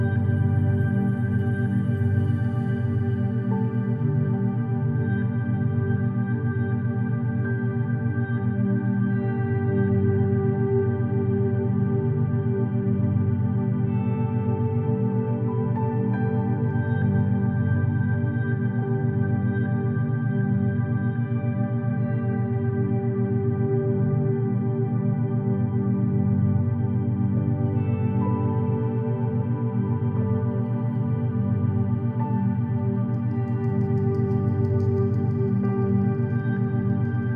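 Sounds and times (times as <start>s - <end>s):
meditation drone with binaural beats: 0.0s - 37.3s.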